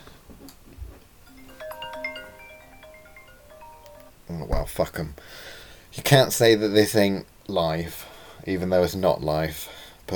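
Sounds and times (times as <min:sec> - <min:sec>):
phone ringtone electronic melody: 0:01.3 - 0:04.3
speech: 0:04.3 - 0:10.1.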